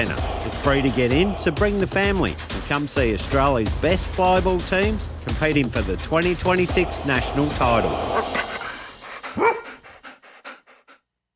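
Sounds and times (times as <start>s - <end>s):
speech: 0.0s - 8.4s, 9.4s - 9.6s
dog panting: 8.2s - 11.0s
dog barking: 9.3s - 9.8s.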